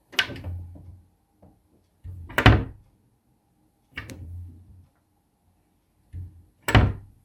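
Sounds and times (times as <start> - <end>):
display cabinet door with bronze handle: 0.0 - 1.0, 2.0 - 2.8, 4.0 - 4.6, 6.1 - 7.2.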